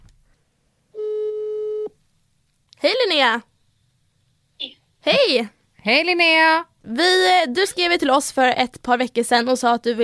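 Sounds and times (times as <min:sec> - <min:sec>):
telephone ringback tone: 0:01.0 - 0:01.9
speech: 0:02.8 - 0:03.5, 0:04.6 - 0:10.0.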